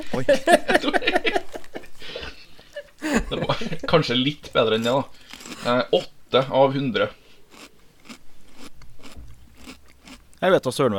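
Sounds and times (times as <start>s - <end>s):
speech: 0.0s - 1.4s, 3.6s - 7.2s, 10.4s - 10.9s
laughter: 0.0s - 4.3s
person eating with crunchy bites and chewing: 5.2s - 5.8s, 7.2s - 10.4s.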